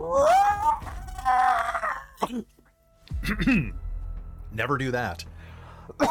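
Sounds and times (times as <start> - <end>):
voice imitating a dragon-like creature's scream in a tabletop fantasy role-playing game: 0.0 - 2.2
speech: 2.2 - 2.6, 3.2 - 3.8, 4.5 - 6.1.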